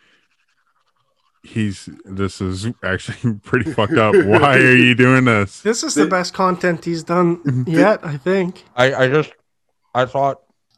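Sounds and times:
toothbrush scrubbing teeth: 0:00.0 - 0:01.5
speech: 0:01.4 - 0:09.4, 0:10.0 - 0:10.4
laughter: 0:01.6 - 0:08.5.

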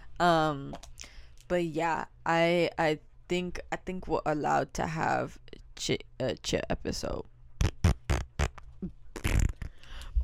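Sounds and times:
speech: 0:00.2 - 0:00.9, 0:01.5 - 0:07.3
farting: 0:07.6 - 0:09.8.

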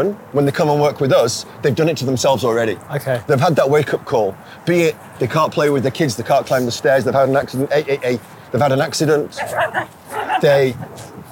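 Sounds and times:
speech: 0:00.0 - 0:11.1
faint murmuring voices: 0:06.4 - 0:11.2
small dog yapping: 0:09.4 - 0:11.2.

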